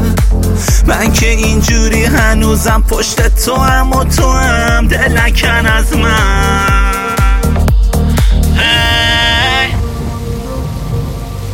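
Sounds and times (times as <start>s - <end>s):
speech: 1.0s - 6.8s
steady rain hissing: 6.0s - 11.5s
bleat-like tone: 6.8s - 7.6s, 8.6s - 9.8s
sustained tonal music-like sounds: 8.4s - 11.5s
deep thunder rumbles: 8.6s - 11.5s.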